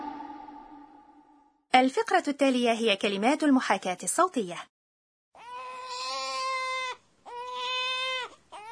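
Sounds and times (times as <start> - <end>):
speech: 1.8 - 4.7
infant crying intensely in strained wails: 5.4 - 8.7.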